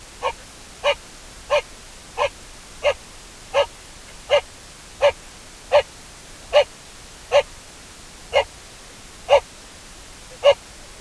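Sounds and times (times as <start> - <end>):
male Mongolian gazelle Procapra gutturosa rutting barks: 0.2 - 5.9, 6.5 - 6.7, 7.3 - 7.5, 8.3 - 8.5, 9.3 - 9.5, 10.3 - 10.6.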